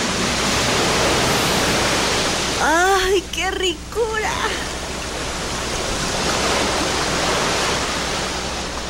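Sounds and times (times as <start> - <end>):
loud rushing surf from ocean waves: 0.0 - 8.8
woman speaking an exclamation: 2.6 - 4.7.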